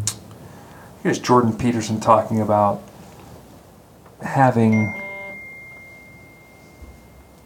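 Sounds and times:
speech: 1.0 - 2.9, 4.4 - 5.0
phone ringing with a thin high electronic tone: 4.7 - 7.4.

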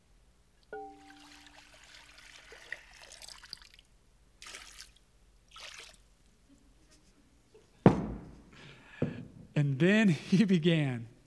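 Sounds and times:
water trickling and splashing into a basin: 0.9 - 6.1
speech: 9.6 - 11.1.

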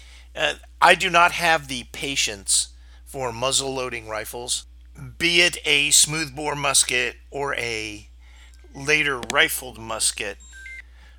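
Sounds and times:
low room hum: 0.0 - 11.1
speech: 0.4 - 8.1, 8.7 - 10.5
electronic phone ringtone with bright rising tones: 10.4 - 10.8.

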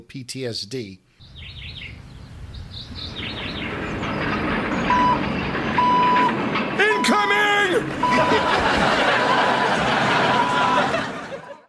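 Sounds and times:
speech: 0.1 - 1.6
garbage truck rumbling: 1.2 - 11.6
higher squeal or horn-like tone: 1.3 - 8.6
garbage truck reversing alarm beeps: 4.9 - 7.2, 8.0 - 11.0
laughter: 7.8 - 11.6.

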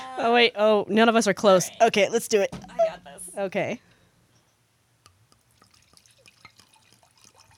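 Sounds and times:
speech: 0.2 - 3.9
wine being poured into a glass: 5.4 - 7.5.

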